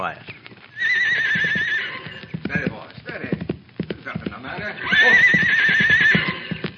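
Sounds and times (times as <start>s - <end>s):
horse hooves clip-clopping on a hard surface: 0.0s - 6.7s
voices talking: 0.0s - 6.7s
horse neighing: 0.7s - 3.3s, 4.4s - 6.7s.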